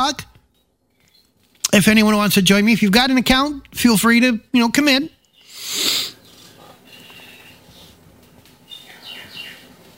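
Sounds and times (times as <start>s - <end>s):
speech: 0.0s - 0.3s, 1.7s - 5.8s
bird chirping from a sleep sound machine: 0.4s - 2.2s, 4.8s - 9.9s.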